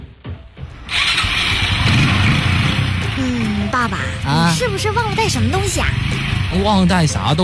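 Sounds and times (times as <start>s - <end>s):
motorcycle engine cranking, sputtering and settling into idle: 0.9s - 7.4s
speech: 3.2s - 7.4s.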